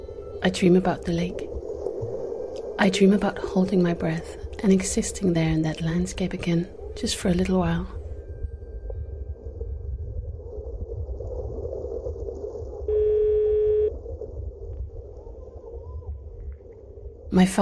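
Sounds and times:
low rumbling hum: 0.0s - 17.6s
speech: 0.4s - 1.5s, 2.8s - 8.0s, 17.4s - 17.6s
telephone line tone while calling a home answering machine: 12.9s - 13.9s.

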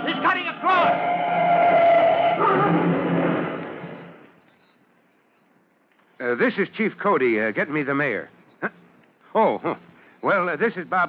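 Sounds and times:
heavy fire truck skidding with tire squeal: 0.0s - 4.2s
speech: 6.4s - 11.0s.

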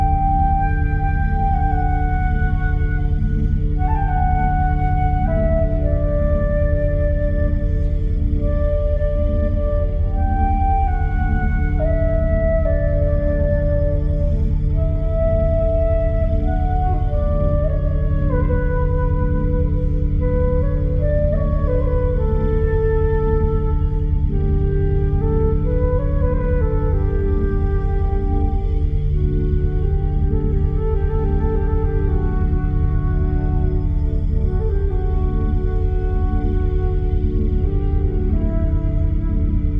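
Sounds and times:
binaural beat drone with deep low hum: 0.0s - 39.7s.

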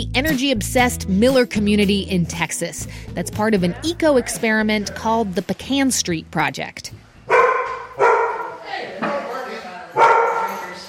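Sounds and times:
speech: 0.0s - 7.0s
dog barking at a home in a Texas eco-community: 7.3s - 8.6s, 10.0s - 10.8s.

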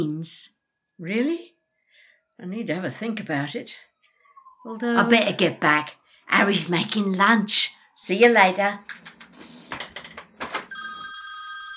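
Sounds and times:
speech: 0.0s - 1.5s, 2.4s - 3.9s, 4.6s - 9.1s
rustling and clattering movement: 9.0s - 10.7s
telephone ringing with electronic trilling tone: 10.6s - 11.7s.

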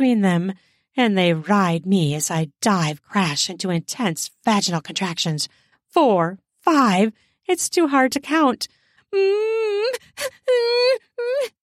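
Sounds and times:
speech: 0.0s - 11.6s
person humming and whimpering: 9.2s - 11.6s.

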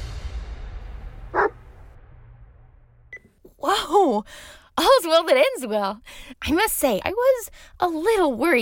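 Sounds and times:
dog barking: 1.3s - 1.6s
speech: 4.2s - 8.6s.

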